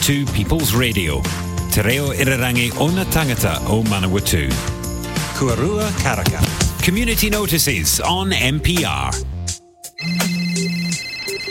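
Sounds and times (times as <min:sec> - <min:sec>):
speech: 0:00.0 - 0:04.8, 0:05.4 - 0:09.3
electronic phone ringtone: 0:10.0 - 0:11.4.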